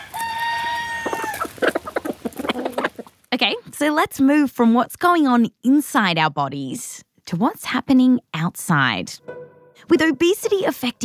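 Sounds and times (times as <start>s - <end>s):
rooster letting out a long drawn-out crow: 0.0s - 1.5s
chickens clucking quickly: 0.1s - 3.2s
speech: 3.3s - 11.0s.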